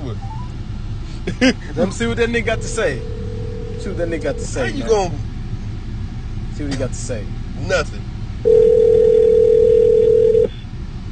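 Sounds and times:
speech: 1.4 - 3.2, 3.8 - 5.3, 6.6 - 8.8
phone call steady electronic tone: 2.6 - 4.5, 8.5 - 10.6.

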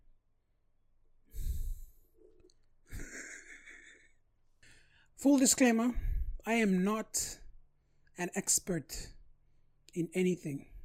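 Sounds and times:
person breathing heavily into a microphone: 1.3 - 2.1, 5.9 - 6.4
speech: 5.2 - 7.4, 8.2 - 9.2, 10.0 - 10.7.

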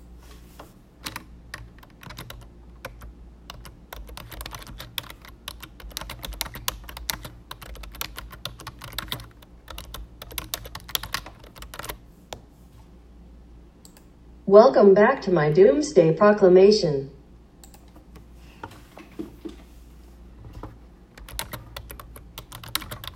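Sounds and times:
low hum: 0.0 - 23.1
typing on a computer keyboard: 1.0 - 12.0, 21.1 - 23.1
speech: 14.5 - 17.2.

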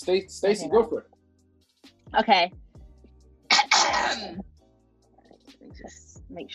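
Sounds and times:
person speaking quietly: 0.0 - 1.0
speech: 0.0 - 1.2, 2.1 - 2.6, 4.1 - 4.5, 5.6 - 6.5
harsh forceful aggressive cough: 3.5 - 4.4.

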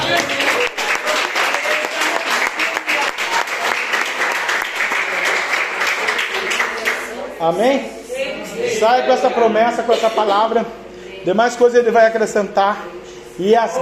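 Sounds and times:
audience applauding: 0.0 - 7.1
speech: 7.4 - 8.0, 8.6 - 13.7.

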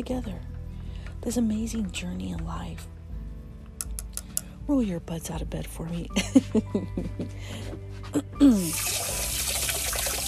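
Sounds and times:
speech: 0.0 - 0.5, 1.2 - 3.0, 4.7 - 9.0
water stream from a sink tap: 8.6 - 10.2.

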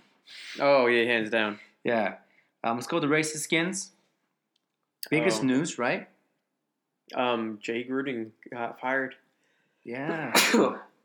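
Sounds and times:
speech: 0.6 - 4.0, 5.0 - 6.1, 7.1 - 9.2, 9.8 - 10.9
person sneezing: 10.1 - 10.9.

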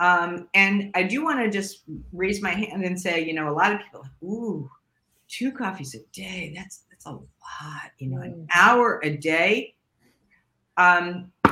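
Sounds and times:
speech: 0.0 - 9.8, 10.8 - 11.4
short humming vocal sound: 8.0 - 8.5.

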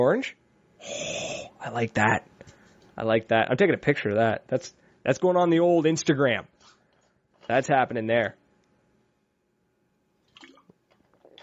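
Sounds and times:
speech: 0.0 - 2.3, 3.0 - 6.5, 7.5 - 8.4
water splashing and dribbling: 10.3 - 11.4.

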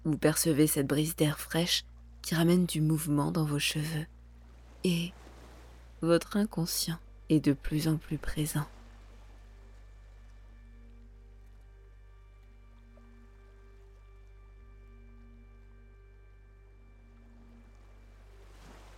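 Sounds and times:
speech: 0.0 - 4.2, 4.8 - 5.2, 6.0 - 8.8
sustained low humming drone: 0.0 - 18.9
ocean waves washing on a beach: 4.3 - 6.1, 8.1 - 10.7, 17.2 - 18.9.

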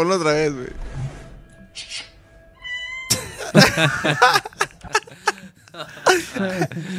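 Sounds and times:
speech: 0.0 - 0.9, 3.5 - 4.6, 5.8 - 6.9
cat meowing through a small phone speaker: 2.6 - 3.2
laughter: 3.1 - 6.9.

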